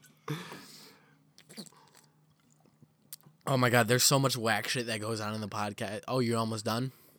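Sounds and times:
person sipping soda: 0.5 - 2.1
gulping soda and wet mouth sounds: 1.4 - 3.4
speech: 3.5 - 7.0.

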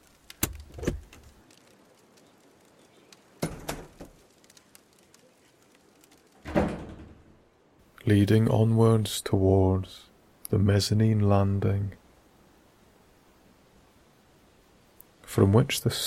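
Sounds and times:
door opening with heavy clunk: 6.4 - 7.2
door rattling clatter: 6.4 - 7.3
speech: 8.1 - 12.0, 15.3 - 16.0.

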